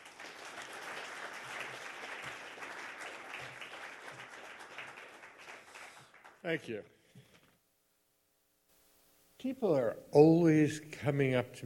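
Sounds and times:
audience applause welcoming an author at a town hall book talk: 0:00.0 - 0:06.5
speech: 0:06.4 - 0:07.0, 0:09.4 - 0:11.6.

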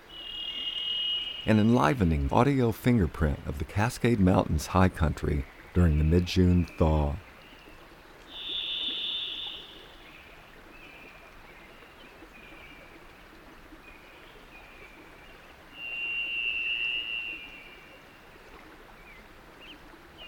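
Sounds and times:
Varied Thrush whistled notes from a tall aspen above a marshy clearing: 0:00.0 - 0:02.3, 0:08.3 - 0:10.0, 0:15.8 - 0:17.8
running water of a rivulet in a marshy clearing: 0:00.0 - 0:20.2
speech: 0:01.4 - 0:07.3.

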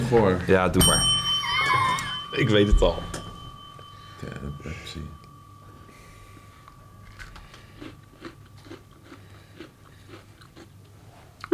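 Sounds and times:
speech: 0:00.1 - 0:01.2, 0:02.3 - 0:03.2, 0:04.2 - 0:05.2
biting and chewing a wasabi-flavored Oreo cookie: 0:07.0 - 0:11.5.

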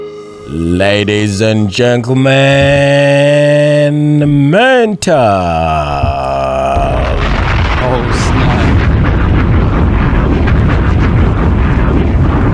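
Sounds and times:
speech: 0:00.5 - 0:06.0
loud deep explosion roar: 0:05.2 - 0:12.5.

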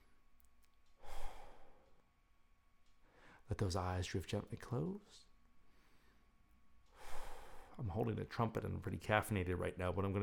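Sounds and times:
deep breathing in through nose and out through mouth during a relaxation exercise: 0:01.0 - 0:02.0, 0:03.0 - 0:03.5, 0:05.6 - 0:07.8
speech: 0:03.5 - 0:05.3, 0:07.8 - 0:10.2.

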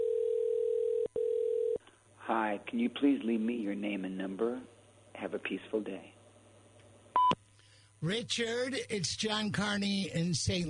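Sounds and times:
telephone tone before voicemail greeting: 0:00.0 - 0:01.8
speech: 0:02.3 - 0:06.2, 0:08.0 - 0:10.6.

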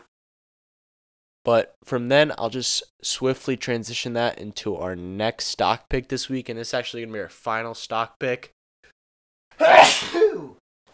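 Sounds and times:
speech: 0:01.5 - 0:08.6, 0:09.6 - 0:10.6
person sneezing: 0:09.6 - 0:10.6.

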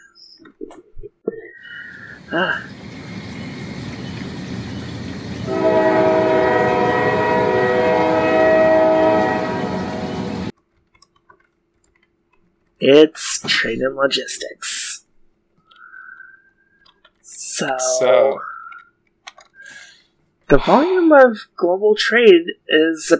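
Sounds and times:
passing train rumble: 0:01.8 - 0:10.5
speech: 0:02.3 - 0:02.8, 0:12.8 - 0:14.8, 0:17.6 - 0:18.5, 0:20.5 - 0:23.1
train whistle blowing: 0:05.4 - 0:10.5.

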